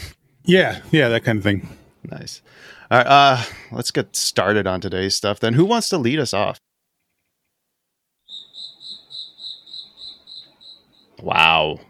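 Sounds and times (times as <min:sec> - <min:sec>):
speech: 0:00.5 - 0:06.7, 0:11.2 - 0:11.8
crickets chirping: 0:08.2 - 0:11.1.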